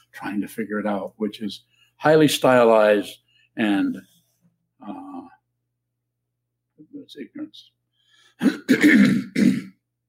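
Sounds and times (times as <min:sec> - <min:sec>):
speech: 0:00.2 - 0:04.1, 0:04.8 - 0:05.3, 0:07.0 - 0:07.8, 0:08.4 - 0:09.7
throat clearing: 0:08.4 - 0:09.8.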